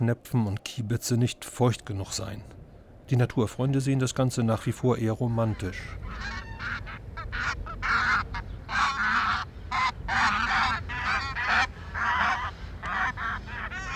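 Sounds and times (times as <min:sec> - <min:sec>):
speech: 0:00.0 - 0:08.1
barnacle and brent geese honking on a pasture in Eiderstedt: 0:05.3 - 0:13.9.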